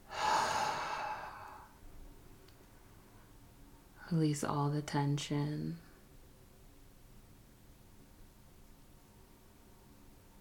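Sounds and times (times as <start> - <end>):
person exhaling through the mouth during guided relaxation breathing: 0.0 - 1.7
speech: 4.1 - 5.9.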